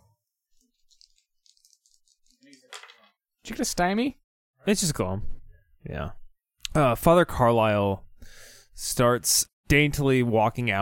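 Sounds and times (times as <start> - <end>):
dice rattling in a hand or cup: 0.9 - 3.1
speech: 3.5 - 10.8.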